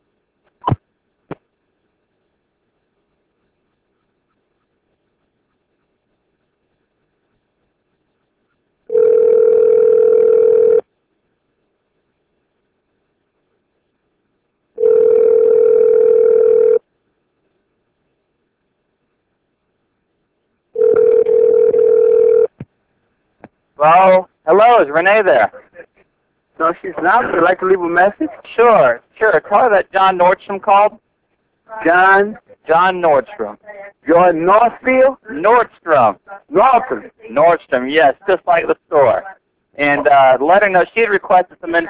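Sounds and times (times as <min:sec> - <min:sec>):
telephone ringback tone as a phone call is placed: 0:08.9 - 0:10.8, 0:14.8 - 0:16.8, 0:20.8 - 0:22.5
speech: 0:23.8 - 0:25.6, 0:26.6 - 0:31.0, 0:31.7 - 0:41.8.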